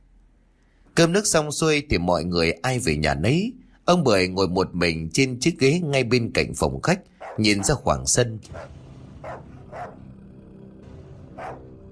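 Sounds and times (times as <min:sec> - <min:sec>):
speech: 0:01.0 - 0:08.8
dog barking: 0:07.2 - 0:07.8, 0:08.5 - 0:10.0, 0:11.4 - 0:11.7.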